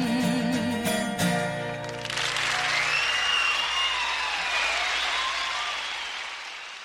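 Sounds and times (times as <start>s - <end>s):
live song final sung notes and guitar: 0.0s - 1.7s
audience applauding after a live song performance: 1.7s - 6.8s.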